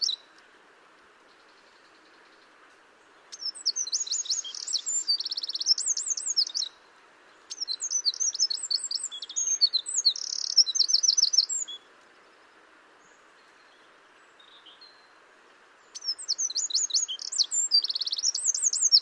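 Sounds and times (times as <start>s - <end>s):
Eurasian wren (Troglodytes troglodytes) song: 0.0s - 0.4s, 3.2s - 15.2s, 15.8s - 19.0s
faint steady background hiss: 0.0s - 19.0s.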